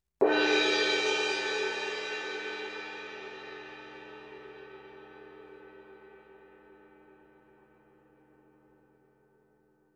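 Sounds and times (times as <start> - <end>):
Sabian 18-inch AA Molto Symphonic suspended cymbal: 0.2 - 7.4.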